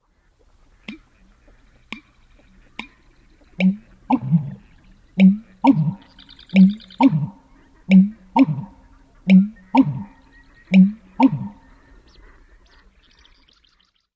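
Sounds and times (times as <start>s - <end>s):
American bittern booming gulping call: 3.6s - 11.7s.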